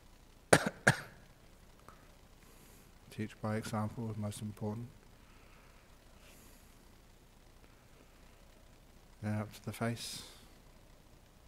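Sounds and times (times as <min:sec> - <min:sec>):
person coughing with a throaty rasp: 0:00.5 - 0:01.2
speech: 0:03.2 - 0:05.0, 0:09.2 - 0:10.4.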